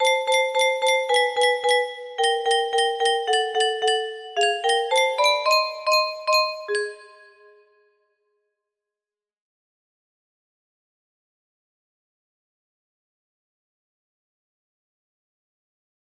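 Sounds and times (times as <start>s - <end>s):
music box melody: 0.0s - 7.8s.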